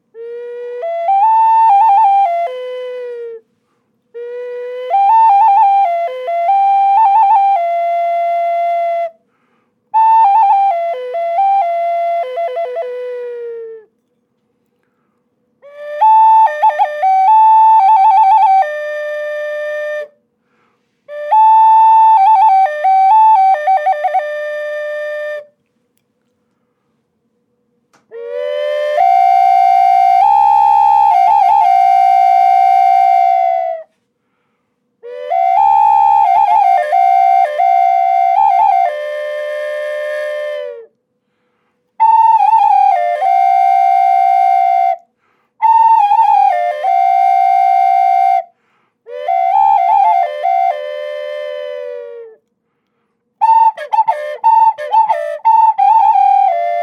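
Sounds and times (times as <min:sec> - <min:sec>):
medium double flute: 0:00.0 - 0:14.2, 0:15.6 - 0:26.0, 0:27.9 - 0:34.2, 0:34.9 - 0:56.8.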